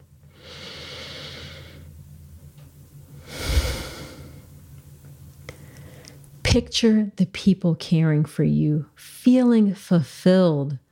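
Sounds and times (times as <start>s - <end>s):
faint low hum: 0.0s - 10.9s
slow deep breath in and out: 0.3s - 1.9s, 3.2s - 4.5s
speech: 6.5s - 10.8s.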